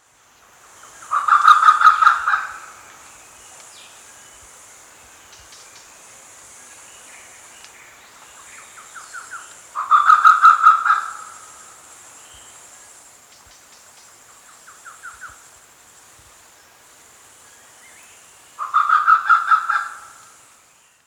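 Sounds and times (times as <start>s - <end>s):
grey peacock pheasant: 0.9s - 2.9s, 8.8s - 11.8s, 18.6s - 20.4s.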